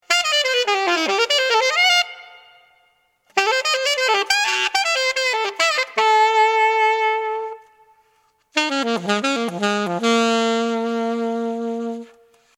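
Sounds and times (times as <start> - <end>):
ceramic alto instrument: 0.0 - 12.5.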